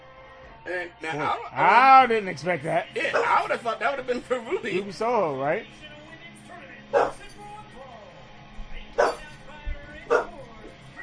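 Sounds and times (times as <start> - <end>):
speech: 0.7 - 5.9
dog barking in short sharp bursts: 3.1 - 3.5, 6.9 - 7.2, 9.0 - 9.3, 10.1 - 10.4
low murmur of sound: 5.7 - 11.0.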